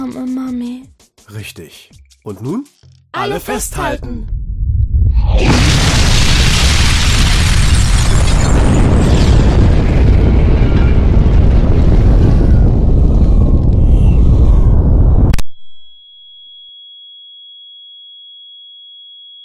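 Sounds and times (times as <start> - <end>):
speech: 0.1 - 4.4
warhead detonating in a massive explosion above a city: 4.0 - 15.4.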